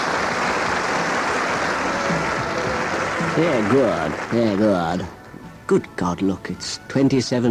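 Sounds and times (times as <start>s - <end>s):
group applauding: 0.0s - 5.2s
speech: 3.4s - 7.4s.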